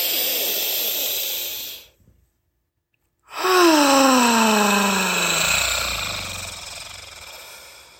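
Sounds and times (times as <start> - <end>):
long loud airy deep breaths: 0.0 - 2.0, 3.3 - 7.9.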